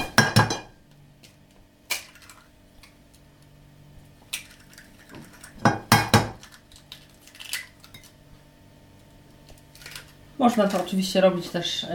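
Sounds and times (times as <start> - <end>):
eggs tapped and cracked against the rim of a bowl: 1.8 - 3.0, 4.2 - 8.2, 9.5 - 10.9
speech: 10.4 - 11.9.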